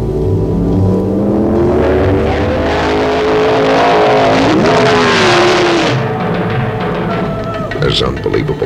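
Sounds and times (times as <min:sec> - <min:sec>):
1972 Ferrari Dino 246 GT Pininfarina engine driving and revving: 0:00.0 - 0:07.8
speech: 0:07.9 - 0:08.6.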